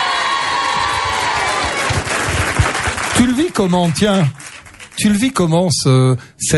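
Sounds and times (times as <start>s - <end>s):
large crowd of female fans of a singer screaming and cheering: 0.0s - 2.9s
speech: 3.2s - 6.5s.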